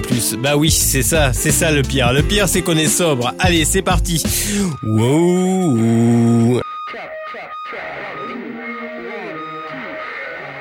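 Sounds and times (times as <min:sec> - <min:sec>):
speech: 0:00.2 - 0:07.2
distorted wavering voice-like tone in a rock song intro: 0:04.7 - 0:10.5.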